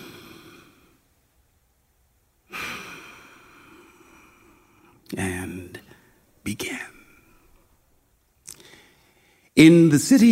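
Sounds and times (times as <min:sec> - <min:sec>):
deep breath taken before a story reading: 0:02.5 - 0:05.0, 0:08.5 - 0:09.5
speech: 0:05.1 - 0:05.8, 0:06.4 - 0:06.9, 0:09.6 - 0:10.3.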